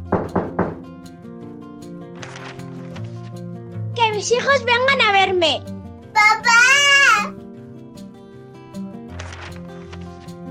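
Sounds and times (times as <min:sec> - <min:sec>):
knocking on a door: 0:00.0 - 0:01.0
speech: 0:04.2 - 0:06.8.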